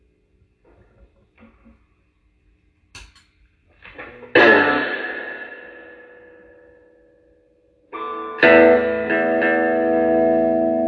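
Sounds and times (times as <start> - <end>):
clean electric guitar on the bridge pickup through an amp with reverb: 4.1 - 6.8, 8.0 - 10.8.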